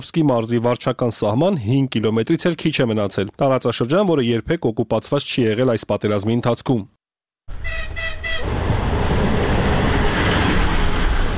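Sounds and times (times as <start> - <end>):
speech: 0.0 - 8.6
electric commuter train horn toots: 7.5 - 8.6
electric commuter train arriving at a railway station: 7.5 - 11.3.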